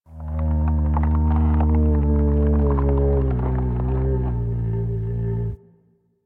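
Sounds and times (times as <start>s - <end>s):
creak: 0.1s - 5.6s.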